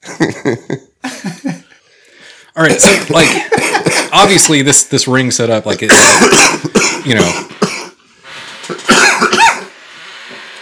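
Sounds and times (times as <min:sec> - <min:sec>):
speech: 0:00.2 - 0:00.9, 0:02.6 - 0:07.6
person coughing: 0:02.7 - 0:04.5, 0:05.9 - 0:08.0, 0:08.7 - 0:09.8.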